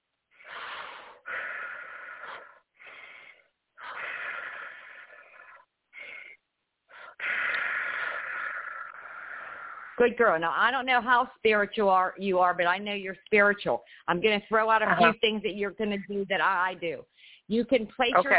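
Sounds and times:
deep breaths drawn in and let out during a guided spiritual exercise: 0:00.3 - 0:10.0, 0:13.8 - 0:14.1, 0:17.1 - 0:17.5
speech: 0:10.0 - 0:18.3.

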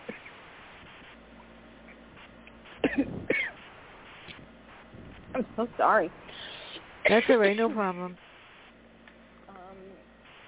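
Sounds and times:
quiet faint hum: 0:00.0 - 0:10.4
person coughing harshly: 0:02.8 - 0:03.6, 0:07.1 - 0:07.6
speech: 0:03.0 - 0:03.3, 0:05.4 - 0:06.2, 0:07.0 - 0:08.2.

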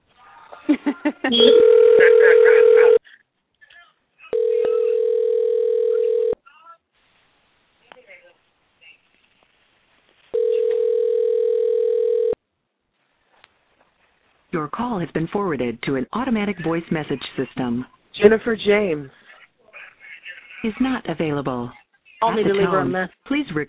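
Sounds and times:
speech: 0:00.8 - 0:01.7, 0:15.1 - 0:19.2, 0:20.6 - 0:23.6
blip of voices or dialing: 0:01.3 - 0:01.7
phone ringback tone: 0:01.4 - 0:03.0, 0:04.3 - 0:06.4, 0:10.4 - 0:12.4.

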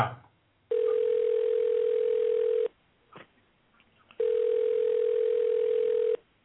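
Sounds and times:
speech: 0:00.0 - 0:00.2
telephone tone over a phone line: 0:00.7 - 0:02.7, 0:04.2 - 0:06.2.

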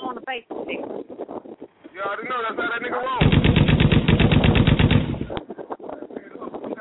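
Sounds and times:
speech: 0:00.3 - 0:01.1
AK rifle automatic gunfire in a video game: 0:03.2 - 0:05.4.

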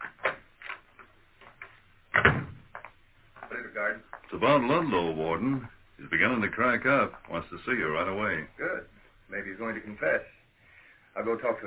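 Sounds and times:
office door rattling clunk as the door swings: 0:02.1 - 0:02.7
speech: 0:03.9 - 0:10.4, 0:11.2 - 0:11.6.

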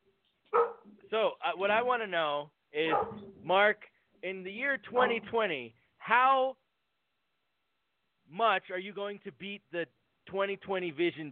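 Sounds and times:
dog barking: 0:00.5 - 0:00.9, 0:02.8 - 0:03.2, 0:04.9 - 0:05.3
speech: 0:01.1 - 0:06.6, 0:08.3 - 0:11.3.

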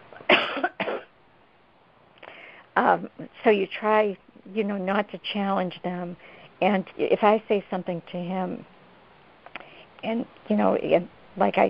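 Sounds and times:
loud harsh coughs: 0:00.3 - 0:01.1
speech: 0:02.9 - 0:08.7, 0:10.0 - 0:11.6.

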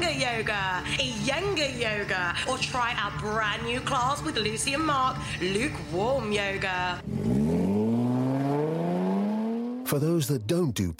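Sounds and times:
speech: 0:00.4 - 0:07.5, 0:09.9 - 0:10.9
Jaguar E-Pace compact SUV engine revving: 0:06.8 - 0:10.6.

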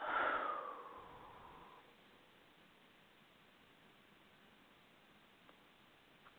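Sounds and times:
group inhaling and exhaling deeply together: 0:00.0 - 0:01.9.

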